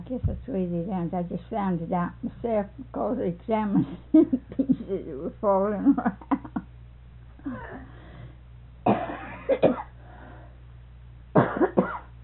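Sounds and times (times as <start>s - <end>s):
speech: 0.1s - 6.4s, 7.4s - 8.0s, 9.5s - 9.9s
short raspy coughs: 8.9s - 9.9s, 11.4s - 12.1s.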